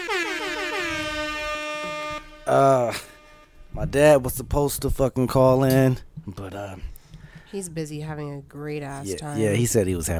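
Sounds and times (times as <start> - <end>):
air horn sound effect blast: 0.0 - 4.2
speech: 2.5 - 3.1, 3.8 - 6.9, 7.5 - 10.1.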